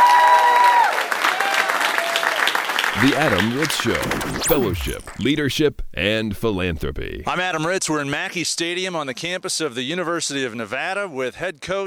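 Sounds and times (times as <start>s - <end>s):
crowd at a student leadership conference applauding: 0.0s - 4.0s
speech: 3.0s - 11.8s.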